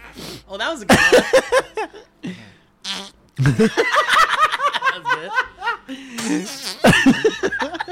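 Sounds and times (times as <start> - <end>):
speech: 0.5 - 2.6, 3.4 - 4.0, 5.2 - 7.3
wavering buzzy fart: 2.8 - 3.6, 6.2 - 7.1
people laughing and snickering: 3.4 - 7.9.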